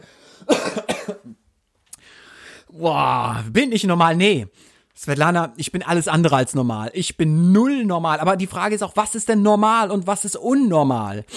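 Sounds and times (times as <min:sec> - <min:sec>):
loud harsh coughing: 0:00.0 - 0:01.4
soft breathy exhale: 0:02.0 - 0:02.7
speech: 0:02.8 - 0:11.3.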